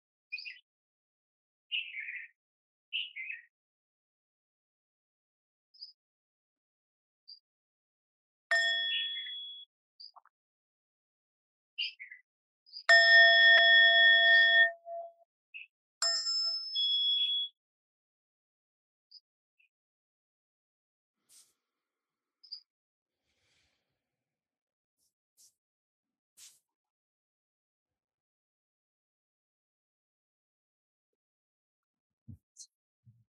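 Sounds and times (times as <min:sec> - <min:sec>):
faint bird chirps: 0:01.7 - 0:03.5, 0:08.6 - 0:10.3, 0:11.8 - 0:12.9, 0:22.4 - 0:22.7
meditation bell ringing: 0:08.5 - 0:09.6, 0:12.9 - 0:15.2.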